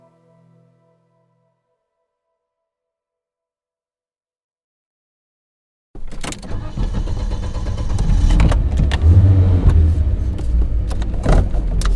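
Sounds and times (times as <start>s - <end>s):
black Porsche SUV engine starting: 6.0s - 11.9s.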